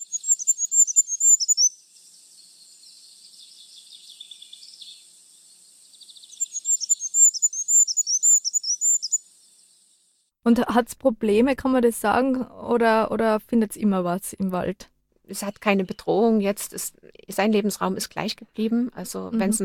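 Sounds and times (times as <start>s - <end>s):
goldcrest soft high twittering: 0.0s - 1.8s, 6.3s - 9.2s
goldcrest high-pitched trilling song: 0.0s - 10.0s
speech: 10.5s - 19.6s.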